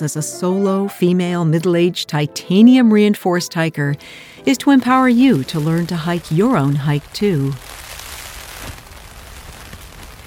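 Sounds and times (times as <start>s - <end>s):
speech: 0.0s - 7.8s
heavy rain drumming on a metal roof: 4.6s - 10.2s.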